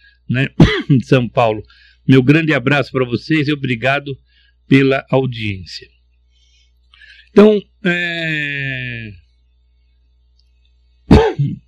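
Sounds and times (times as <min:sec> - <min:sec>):
speech: 0:00.3 - 0:05.9, 0:07.4 - 0:09.2, 0:11.2 - 0:11.6
throat-clearing cough lingering after an illness: 0:00.6 - 0:01.0, 0:11.1 - 0:11.6.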